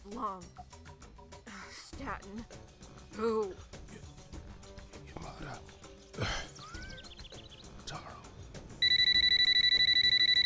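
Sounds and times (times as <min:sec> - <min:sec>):
speech: 0:00.0 - 0:00.9, 0:02.0 - 0:03.8, 0:05.2 - 0:06.5
telephone ringing with rapid pulsing electronic trill: 0:08.8 - 0:10.4.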